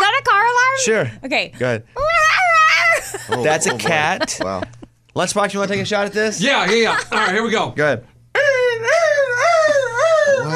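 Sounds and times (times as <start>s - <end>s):
speech: 0.8s - 2.0s, 3.1s - 8.1s
laughter: 2.7s - 4.9s, 6.4s - 7.7s
human voice imitating a hurt puppy with whimpering whines: 8.4s - 10.5s.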